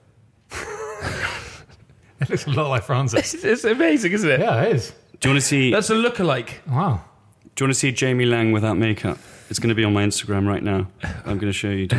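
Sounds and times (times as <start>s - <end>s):
surprised gasp: 0.5s - 1.7s
speech: 2.2s - 11.9s.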